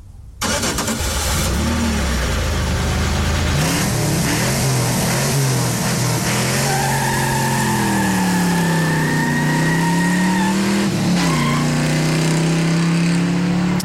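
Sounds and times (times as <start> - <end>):
car engine cranking, revving and pulling away: 0.4 - 13.8
tire squeal: 5.7 - 12.0.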